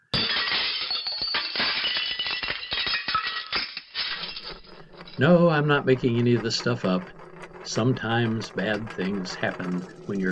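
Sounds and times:
pile of magician's props crashing to the floor: 0.1s - 5.2s
magician's table toppling: 0.2s - 10.2s
speech: 5.2s - 10.2s.

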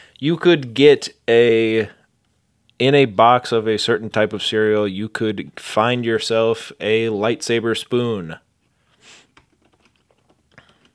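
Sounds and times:
speech: 0.2s - 2.0s, 2.8s - 8.4s
typing on a computer keyboard to search online: 9.4s - 10.9s.

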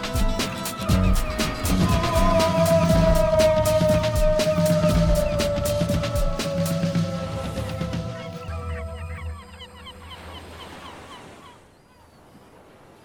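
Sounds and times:
seagulls calling: 0.0s - 12.6s.

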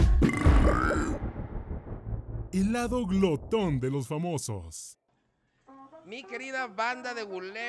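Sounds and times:
loud gravelly burp: 0.2s - 1.3s
speech: 2.5s - 5.0s, 6.1s - 7.6s.

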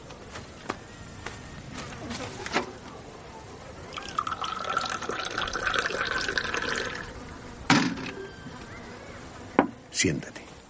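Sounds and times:
faint noise: 0.0s - 10.6s
tea pouring into a glass: 3.9s - 7.1s
speech: 10.0s - 10.4s.

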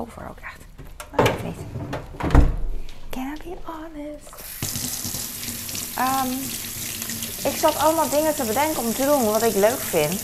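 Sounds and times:
speech: 0.0s - 1.8s, 3.4s - 5.1s, 6.0s - 6.8s, 7.4s - 10.2s
soft clunks and rustles of putting an apple into the fridge: 0.8s - 3.6s
refrigerator door shutting with a low thud: 1.1s - 2.8s.

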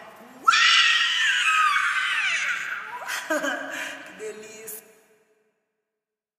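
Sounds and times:
person screaming imitating a panther: 0.4s - 3.1s
laughter: 3.0s - 3.9s
speech: 3.3s - 4.9s.

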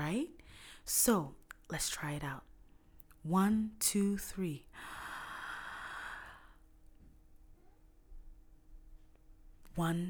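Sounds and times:
speech: 0.1s - 2.5s, 3.2s - 5.0s, 9.8s - 10.0s
slow deep inhale during breathing exercise: 4.8s - 6.6s.

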